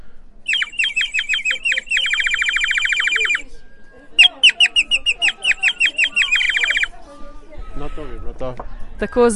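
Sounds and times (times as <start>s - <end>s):
water-filled bird whistle warbling: 0.5s - 6.9s.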